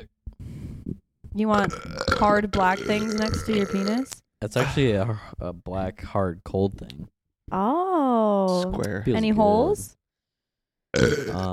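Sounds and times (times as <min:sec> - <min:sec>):
speech: 0:01.4 - 0:10.0, 0:10.9 - 0:11.5
person burping: 0:01.6 - 0:05.2, 0:10.9 - 0:11.5.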